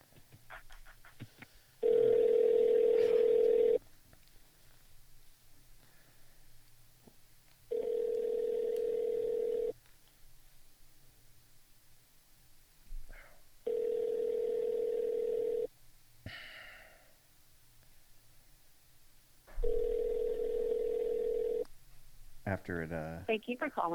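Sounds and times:
phone line ringback tone during call transfer: 1.8s - 3.8s, 7.7s - 9.7s, 13.7s - 15.7s, 19.6s - 21.6s
speech: 22.6s - 23.9s.

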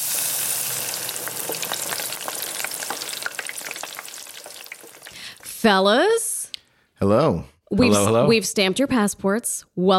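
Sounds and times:
food sizzling in a hot frying pan: 0.0s - 5.4s
speech: 5.6s - 6.2s, 7.0s - 9.9s.

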